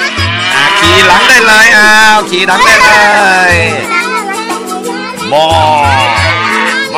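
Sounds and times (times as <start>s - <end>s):
black cow mooing: 0.0s - 1.3s, 6.0s - 6.8s
speech: 1.0s - 4.0s, 5.3s - 6.2s.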